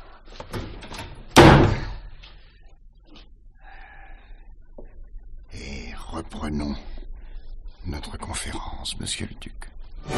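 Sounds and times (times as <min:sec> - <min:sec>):
closet door slamming shut: 0:00.5 - 0:02.0
speech: 0:06.5 - 0:06.9, 0:07.9 - 0:10.1.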